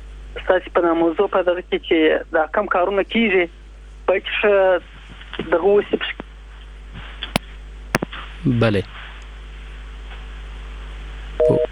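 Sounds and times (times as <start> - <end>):
constant hiss: 0.0 - 11.7
speech: 0.4 - 6.2, 8.4 - 9.0
telephone line tone after a dropped call: 11.4 - 11.7.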